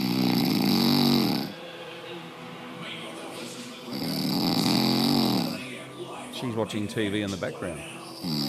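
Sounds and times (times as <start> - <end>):
man snoring loudly in sleep: 0.0 - 1.6, 3.9 - 5.7, 8.1 - 8.4
speech: 6.4 - 8.4.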